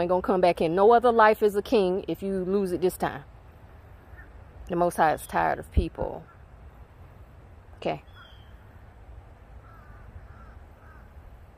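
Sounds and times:
speech: 0:00.0 - 0:03.3, 0:04.7 - 0:06.3, 0:07.8 - 0:08.1
crows cawing: 0:09.6 - 0:11.2.

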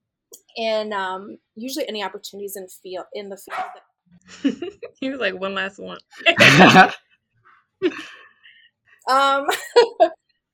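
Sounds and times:
speech: 0:00.6 - 0:07.0, 0:07.8 - 0:08.2, 0:09.1 - 0:10.2
dog barking: 0:03.5 - 0:03.8
laughter: 0:04.3 - 0:05.0, 0:06.2 - 0:07.0, 0:07.8 - 0:08.2, 0:09.5 - 0:10.2.

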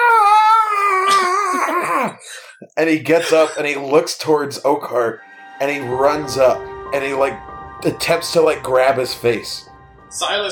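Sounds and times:
person howling in imitation of a character during a role-play game: 0:00.0 - 0:02.2
speech: 0:02.7 - 0:10.4.

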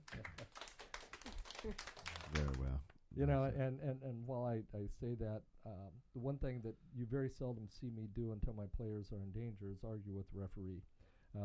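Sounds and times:
soft light golf clapping: 0:00.0 - 0:03.0
speech: 0:01.6 - 0:11.4.

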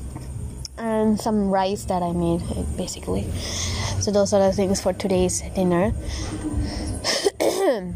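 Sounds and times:
speech: 0:01.0 - 0:07.2
person with a cold coughing or clearing throat: 0:07.0 - 0:07.9.

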